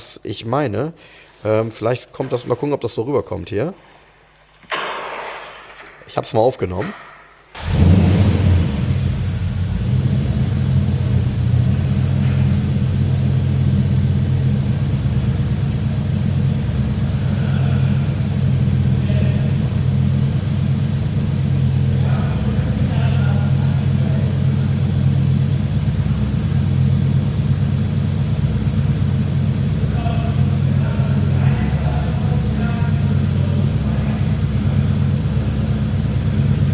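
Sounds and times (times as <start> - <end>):
speech: 0.2 - 4.0, 6.1 - 7.8
large 5-litre V8 car engine idling: 7.5 - 36.7.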